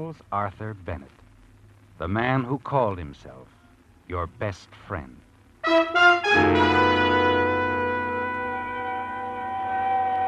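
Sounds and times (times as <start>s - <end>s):
speech: 0.0s - 1.2s, 2.0s - 7.0s
ambulance siren wailing: 6.3s - 10.2s.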